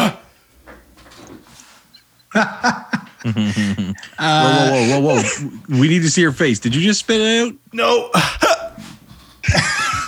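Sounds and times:
man hiccuping after eating a hot pepper: 0.0 - 0.3, 3.9 - 5.7, 7.8 - 8.8
laughter: 2.3 - 6.4, 9.4 - 10.0
speech: 2.4 - 8.6.

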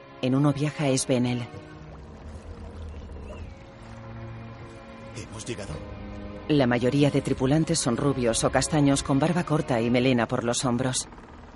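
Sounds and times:
speech: 0.2 - 1.7, 5.2 - 11.3
water washing against hulls of Viking ships sailing on a wide river at dawn: 1.4 - 5.4.

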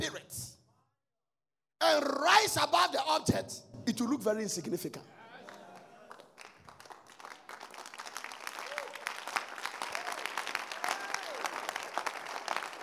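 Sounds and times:
speech: 1.9 - 5.2
audience clapping: 5.3 - 12.8.

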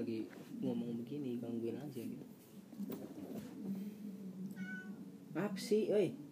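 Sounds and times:
speech: 0.0 - 4.7, 5.3 - 6.2
cat meowing at home: 4.5 - 5.0.

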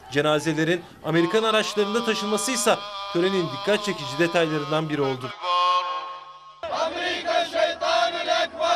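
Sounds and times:
large crowd at a funeral ceremony in Baghdad Iraq chanting slogans: 0.0 - 8.7
speech: 0.1 - 5.6.

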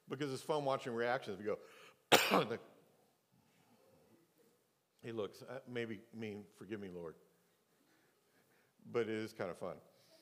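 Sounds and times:
speech: 0.1 - 2.7, 5.0 - 7.3, 8.8 - 9.9
loud harsh deliberate cough: 2.1 - 2.6.

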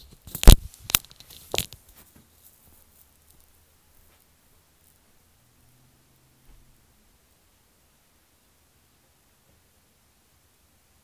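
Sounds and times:
sheet of paper tearing and crinkling: 0.0 - 1.8.

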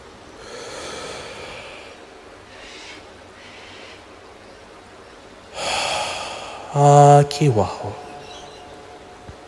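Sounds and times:
deep breath in through the nose and mouth during a breathing exercise: 0.4 - 3.0, 5.6 - 6.7
speech: 6.8 - 8.0.

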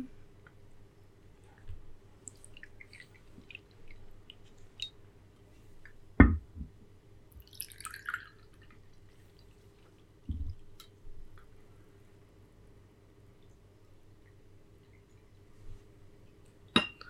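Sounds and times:
low steady hum: 0.0 - 17.0
tea pouring into cups: 2.2 - 4.9, 7.4 - 9.8
soft clinks of ceramic and glass: 16.8 - 17.0.

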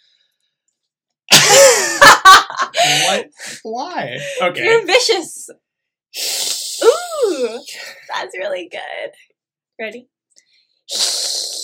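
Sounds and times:
laughter: 1.4 - 3.4, 4.2 - 5.1
speech: 2.7 - 10.1, 10.9 - 11.1
person imitating a hiss: 6.2 - 7.8, 10.9 - 11.6.

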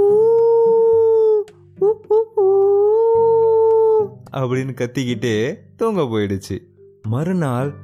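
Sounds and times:
person's voice mimicking a happy fox howling and yelping: 0.0 - 4.2
faint low backing: 0.0 - 7.8
speech: 4.4 - 7.8.

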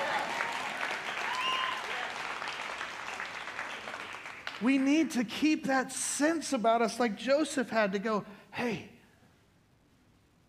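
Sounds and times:
audience clapping: 0.0 - 5.1
speech: 4.6 - 8.9.

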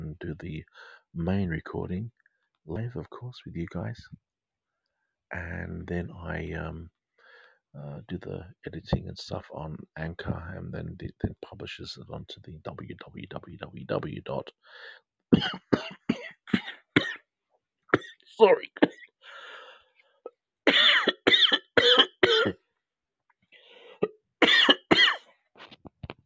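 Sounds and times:
speech: 0.3 - 4.3, 5.3 - 7.0, 7.7 - 16.0, 18.4 - 19.0
person coughing and spluttering after tonic water went down the wrong way: 15.3 - 17.2, 18.0 - 18.2, 20.7 - 22.6, 24.4 - 25.2
person gasping: 19.2 - 19.9, 23.6 - 24.1.

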